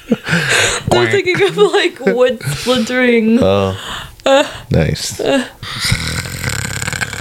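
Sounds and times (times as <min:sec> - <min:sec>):
speech: 0:00.1 - 0:06.3
person imitating snoring: 0:05.6 - 0:07.2.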